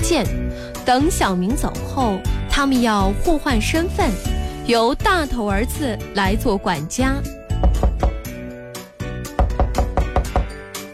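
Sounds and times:
speech: 0.1s - 7.4s
sharp knocks on a door: 7.6s - 8.3s, 9.3s - 10.6s.

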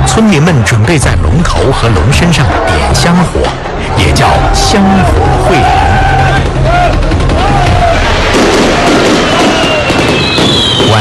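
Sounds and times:
speech: 0.2s - 6.1s
fireworks booming and crackling as a start signal for a village incense fire-dragon event: 6.9s - 10.9s.

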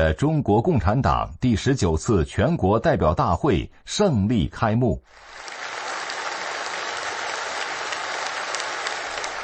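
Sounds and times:
speech: 0.0s - 5.7s
roomful of people applauding in a meeting room: 5.1s - 9.4s.

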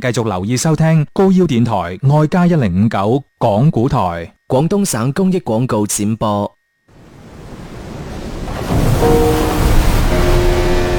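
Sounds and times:
speech: 0.0s - 6.6s
faint tonal hum: 1.5s - 8.1s, 8.8s - 10.9s
ocean waves surging: 6.9s - 10.9s.

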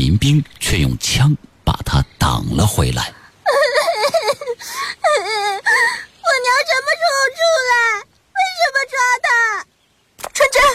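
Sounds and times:
speech: 0.0s - 3.8s
young child crying in wails and whimpers: 3.4s - 9.6s.

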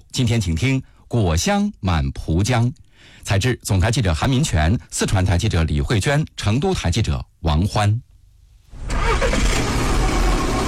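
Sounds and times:
speech: 0.2s - 8.1s
car engine running on a drive from a city centre: 8.7s - 10.6s.

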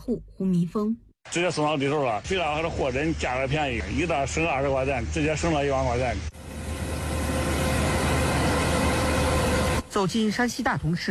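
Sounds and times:
speech: 0.0s - 6.5s, 10.0s - 11.0s
combine harvesters working at full power in a golden cornfield: 1.4s - 9.9s.

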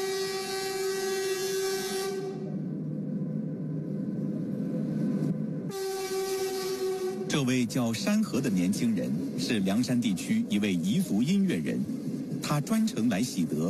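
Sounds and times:
slow passenger train horn in the Liangshan region: 0.0s - 2.6s, 5.7s - 7.4s
slow passenger train pulling into a station in the Liangshan region: 0.0s - 13.6s
speech: 7.4s - 13.6s.

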